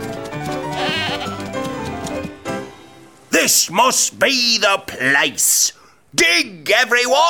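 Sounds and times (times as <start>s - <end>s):
goat bleating: 0.6s - 1.5s
speech: 3.4s - 7.2s.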